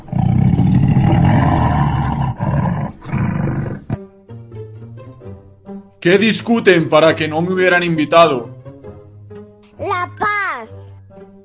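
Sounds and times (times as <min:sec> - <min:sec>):
tiger roaring: 0:00.0 - 0:04.0
speech: 0:06.0 - 0:08.5.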